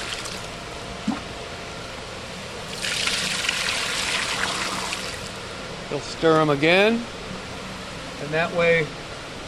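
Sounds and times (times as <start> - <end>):
water pouring into a bucket of fish eggs and milt: 2.7 - 5.2
speech: 5.9 - 7.2, 8.3 - 9.0.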